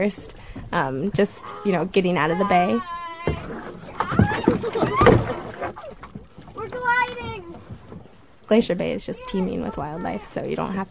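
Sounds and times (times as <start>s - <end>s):
speech: 0.0s - 3.5s, 8.5s - 10.8s
kayak paddles splashing through water: 0.0s - 10.8s
paddle knocking against kayak: 3.2s - 8.2s.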